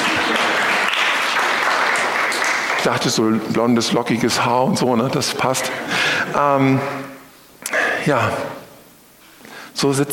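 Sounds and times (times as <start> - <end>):
audience applause: 0.0 - 3.6
speech: 2.8 - 7.1, 8.0 - 8.6, 9.8 - 10.1.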